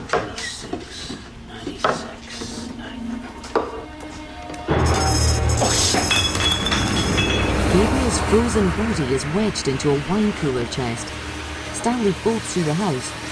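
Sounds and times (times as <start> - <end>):
glass bottles clinking while searching a wine cellar for a bottle: 4.7 - 8.3
speech: 7.8 - 13.2.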